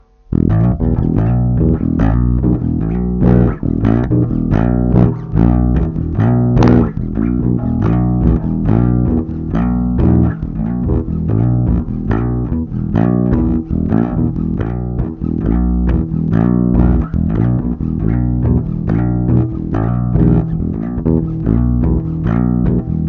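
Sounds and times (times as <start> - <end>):
bass line: 0.3 - 23.0.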